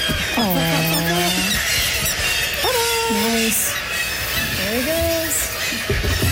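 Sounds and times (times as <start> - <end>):
kittiwake squawking as it is released from a release box: 0.0 - 6.3
steady noisy background: 0.0 - 6.3.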